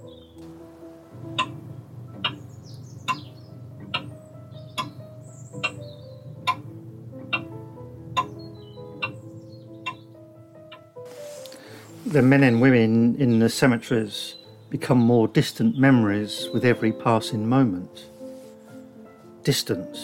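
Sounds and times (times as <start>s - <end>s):
grandfather clock ticking: 1.0s - 11.0s
faint bird chirps: 2.2s - 6.6s, 8.2s - 10.8s
speech: 12.1s - 18.1s, 19.4s - 20.0s.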